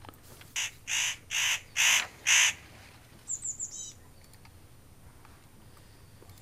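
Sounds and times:
spotted nutcracker giving harsh rasping krr calls: 0:00.6 - 0:02.6
faint higher chirping notes from a small bird: 0:03.3 - 0:04.4.

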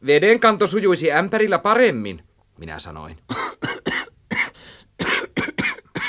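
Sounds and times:
speech: 0:00.0 - 0:03.5
harsh raspy coughing fit: 0:03.3 - 0:06.0.

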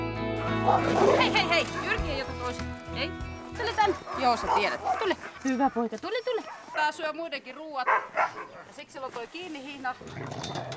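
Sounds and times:
husky dogs barking and yipping at a husky farm near Juuka: 0:00.5 - 0:02.4, 0:03.6 - 0:07.1, 0:07.8 - 0:08.8
speech: 0:00.7 - 0:10.7.

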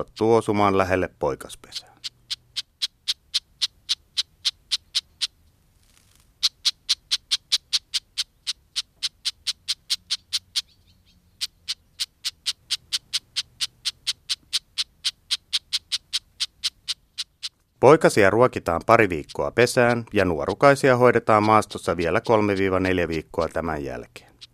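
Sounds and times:
speech: 0:00.0 - 0:01.9, 0:17.8 - 0:24.3
red-backed shrike alarm calls: 0:00.0 - 0:05.4, 0:06.4 - 0:24.5.

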